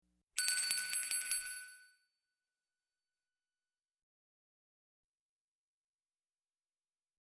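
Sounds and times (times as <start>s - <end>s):
bell ringing: 0.4s - 1.9s.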